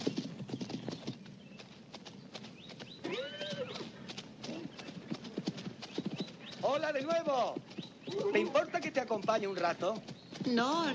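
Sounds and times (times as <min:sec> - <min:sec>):
hooves of a horse being ridden clip-clopping at a walk: 0:00.0 - 0:10.9
speech: 0:06.7 - 0:10.9.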